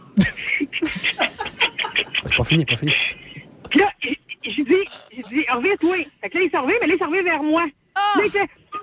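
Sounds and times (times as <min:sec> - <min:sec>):
laughter: 0:00.2 - 0:02.9
speech: 0:02.4 - 0:03.9, 0:04.6 - 0:08.6
person imitating a man snoring: 0:04.8 - 0:06.1.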